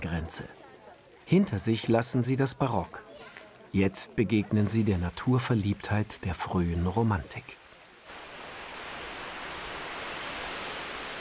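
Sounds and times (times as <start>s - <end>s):
speech: 0.0s - 0.6s, 1.3s - 3.1s, 3.7s - 7.6s
artificial waterfall rushing: 8.0s - 11.1s.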